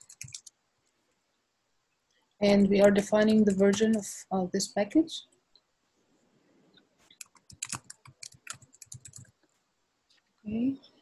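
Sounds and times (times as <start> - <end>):
crisp keystrokes on a computer keyboard: 0.0 - 0.5, 2.5 - 4.1, 7.1 - 9.4
speech: 2.4 - 5.3.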